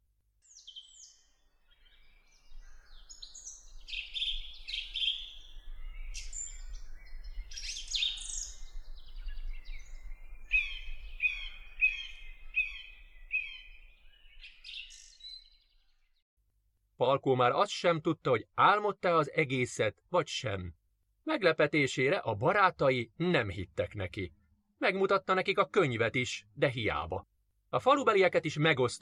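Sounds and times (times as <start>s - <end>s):
birds chirping and singing with tweets and warbling phrases: 0.5s - 16.2s
speech: 17.0s - 29.0s.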